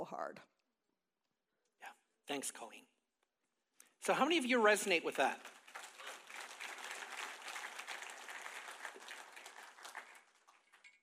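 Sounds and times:
speech: 0.0 - 0.6, 1.8 - 2.9, 4.0 - 5.6
audience clapping: 4.5 - 11.0.

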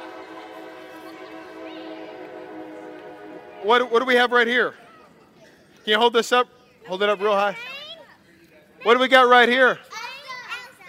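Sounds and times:
train horn blaring: 0.0 - 4.8
speech: 3.6 - 4.8, 5.8 - 7.7, 8.8 - 9.9.

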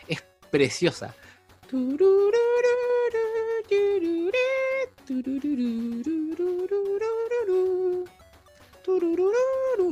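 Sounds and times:
speech: 0.1 - 2.4, 5.2 - 7.2
voice humming a bouncy tune imitating 8-bit NES game music: 1.7 - 8.2, 8.8 - 9.9.

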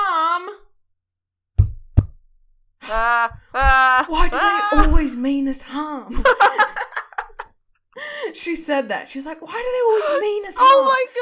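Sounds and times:
dull heavy knocks on a hard surface in a farmhouse living room: 1.6 - 2.2
laughter: 2.8 - 5.0, 6.1 - 7.5
speech: 3.2 - 6.7, 8.4 - 11.2.

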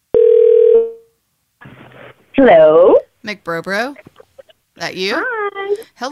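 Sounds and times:
steady electronic telephone tone: 0.1 - 1.1
speech: 2.4 - 4.1, 4.8 - 6.0.

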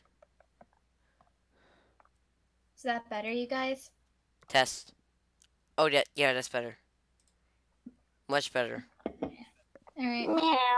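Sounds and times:
speech: 2.8 - 5.0, 5.8 - 6.8, 8.3 - 8.9, 10.0 - 10.7
person imitating a cat's meow: 10.2 - 10.7.

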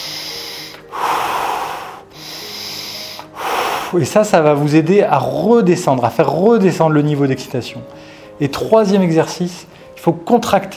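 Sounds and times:
deep slow breathing: 0.0 - 4.0
speech: 3.9 - 10.7.

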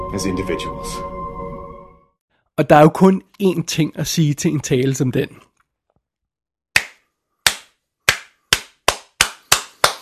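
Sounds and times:
speech: 0.1 - 1.1, 2.6 - 5.5
one person clapping hands: 6.7 - 10.0.

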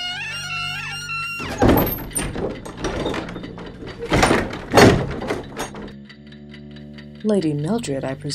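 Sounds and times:
hidden door creaking as it is forced open: 0.0 - 6.0
scraping and grinding mechanical noises: 1.4 - 5.9
heavy thunks: 1.4 - 6.0
speech: 2.4 - 3.2, 7.2 - 8.3.

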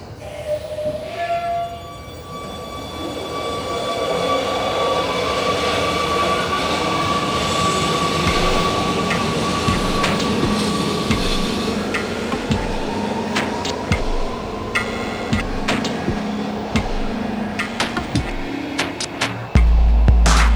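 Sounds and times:
Amsterdam metro train line 52 rumbling along the rails: 0.0 - 20.5
high metallic squeals and whines from metro train wheels: 0.0 - 20.5
metro train wheels clacking over track joints: 5.1 - 20.5.

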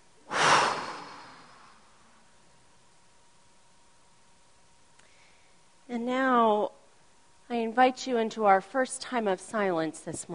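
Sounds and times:
deep breath in and out during a guided group meditation: 0.2 - 2.3
speech: 7.8 - 10.3.

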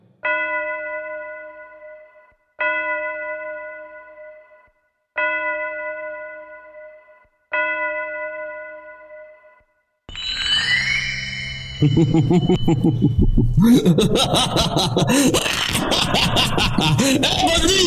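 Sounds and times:
clocks chiming the hour: 0.2 - 13.4
laughter: 11.8 - 17.8
speech: 11.8 - 17.8.

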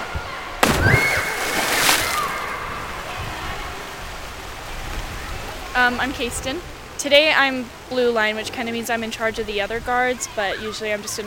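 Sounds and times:
water splashing and sloshing in an outdoor swimming pool: 0.6 - 3.7
speech: 5.9 - 11.2.

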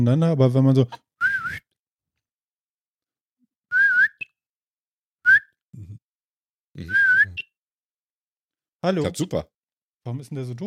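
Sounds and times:
speech: 0.0 - 1.0, 6.8 - 7.0, 8.8 - 10.6
short warbling whistles: 1.2 - 1.6, 3.7 - 4.3, 5.3 - 5.5, 6.9 - 7.5.

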